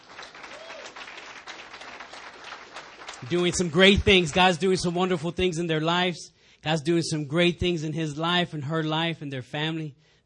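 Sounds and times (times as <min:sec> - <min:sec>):
crowd applauding: 0:00.0 - 0:04.9
speech: 0:03.2 - 0:10.0.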